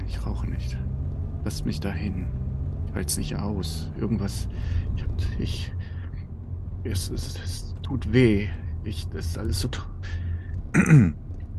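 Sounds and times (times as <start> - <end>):
speech: 0.1 - 5.8, 6.8 - 10.2, 10.8 - 11.2
gruff throat clearing: 10.7 - 11.2.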